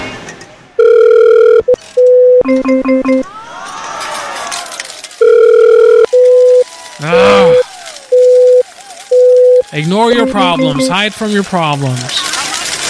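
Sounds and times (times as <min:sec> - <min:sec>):
fax machine beeping and warbling: 0:00.8 - 0:03.3, 0:05.2 - 0:12.1
speech: 0:09.8 - 0:12.3.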